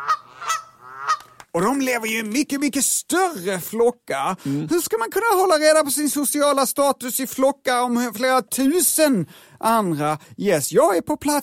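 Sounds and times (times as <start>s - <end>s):
Canada geese honking: 0.0s - 1.4s
speech: 1.5s - 11.4s.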